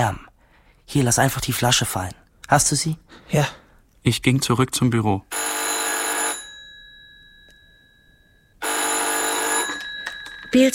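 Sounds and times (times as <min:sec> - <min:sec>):
speech: 0:00.0 - 0:00.2, 0:00.9 - 0:05.6
electric telephone bell ringing: 0:05.3 - 0:10.7.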